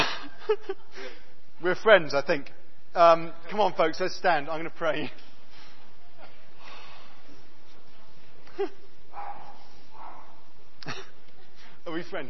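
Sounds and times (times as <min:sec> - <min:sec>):
speech: 0:00.5 - 0:05.3, 0:08.6 - 0:08.8, 0:10.8 - 0:11.1, 0:11.8 - 0:12.2
dog barking at a gathering: 0:09.1 - 0:10.5.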